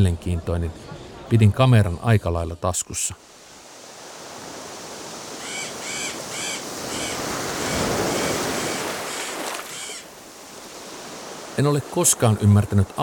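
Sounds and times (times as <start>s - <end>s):
speech: 0.0s - 3.4s, 11.6s - 13.0s
waves washing onto a beach: 3.2s - 13.0s.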